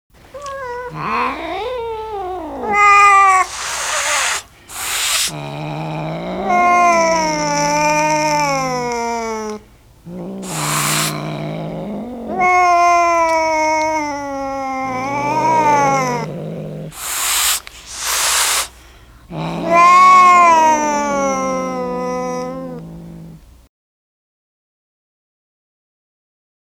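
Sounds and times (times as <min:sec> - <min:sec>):
two cats hissing: 0:00.2 - 0:23.7.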